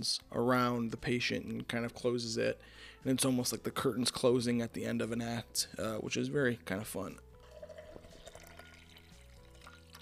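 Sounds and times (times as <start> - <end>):
speech: 0.0 - 7.3
pineapple-infused water pouring into a glass: 7.4 - 10.0.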